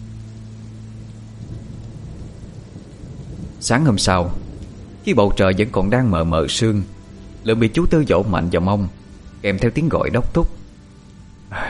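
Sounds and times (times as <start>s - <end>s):
heavy rain falling: 0.0s - 11.6s
speech: 3.6s - 4.4s, 5.0s - 10.6s.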